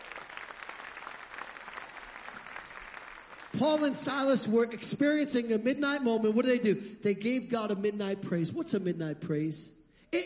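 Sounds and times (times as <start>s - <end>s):
audience applause: 0.0s - 4.0s
speech: 3.6s - 10.2s.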